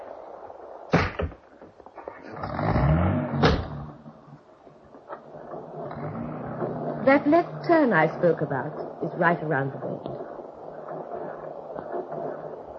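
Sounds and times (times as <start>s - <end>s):
car engine revving and pulling away: 2.2s - 8.5s
speech: 7.1s - 10.2s.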